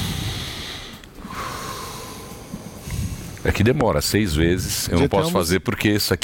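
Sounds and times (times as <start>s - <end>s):
person breathing deeply close to the microphone: 0.0s - 3.5s
speech: 3.4s - 6.2s.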